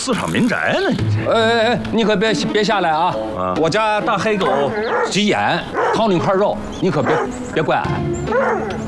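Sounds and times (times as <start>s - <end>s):
speech: 0.0s - 8.8s
big black dog barking and yelping: 4.4s - 6.3s, 7.0s - 7.3s, 8.3s - 8.8s.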